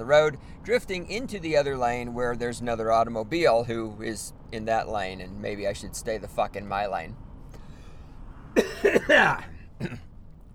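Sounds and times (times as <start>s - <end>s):
speech: 0.0s - 7.2s, 8.6s - 10.1s
person coughing: 8.6s - 10.1s.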